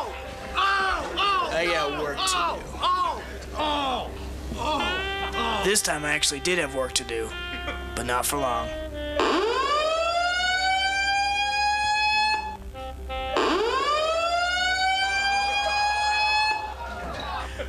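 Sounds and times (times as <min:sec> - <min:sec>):
laughter: 0:00.0 - 0:05.7, 0:15.1 - 0:17.6
speech: 0:01.6 - 0:02.8, 0:03.6 - 0:04.8, 0:05.6 - 0:08.8
fire alarm wailing in rising sweeps: 0:09.2 - 0:17.4.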